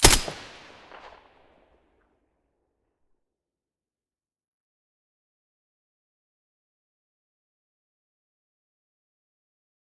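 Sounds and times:
M4A1 rifle with silencer firing: 0.0s - 1.3s.

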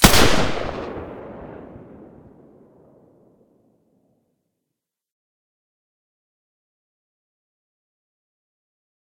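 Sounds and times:
silenced G36 rifle: 0.0s - 1.7s.

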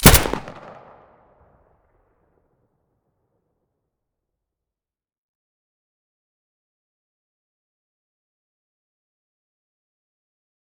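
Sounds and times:
Abakan rifle muzzle blast: 0.0s - 0.9s.

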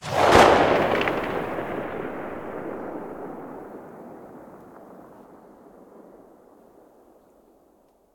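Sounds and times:
distant Mosin rifle muzzle shot: 0.0s - 5.4s.

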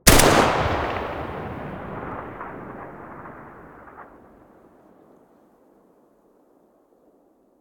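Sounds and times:
Galil rifle muzzle blast: 0.0s - 4.2s.

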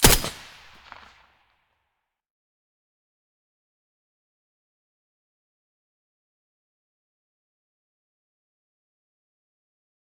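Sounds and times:
M4A1 rifle with silencer firing: 0.0s - 1.2s.

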